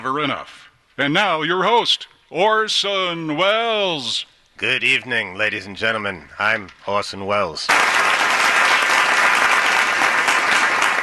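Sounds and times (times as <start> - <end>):
speech: 0.0 - 8.0
loud sustained applause from a large audience: 7.7 - 11.0.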